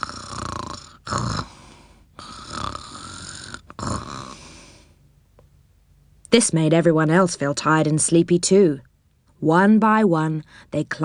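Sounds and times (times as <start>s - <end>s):
gentle snoring of someone asleep in bed: 0.0s - 5.0s
speech: 6.3s - 11.0s.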